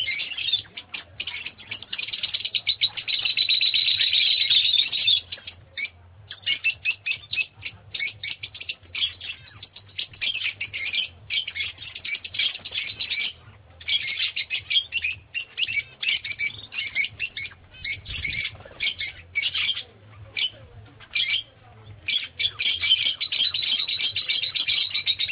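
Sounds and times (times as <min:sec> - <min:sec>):
lovebird squawks and shrill chirps: 0:00.0 - 0:25.3.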